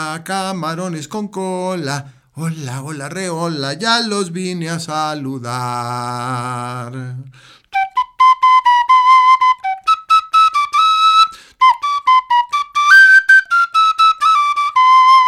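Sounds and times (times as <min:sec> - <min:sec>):
speech: 0:00.0 - 0:07.6
person whistling a lively melody: 0:07.7 - 0:15.2.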